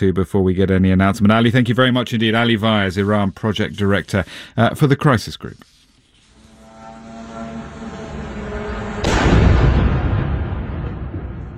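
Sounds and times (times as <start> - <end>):
speech: 0.0 - 5.8
drone engine droning hum with tonal harmonics: 6.2 - 11.2
long low rumbling roar: 6.4 - 11.5
drone crashing into an apartment block with loud explosive impact: 8.6 - 11.5.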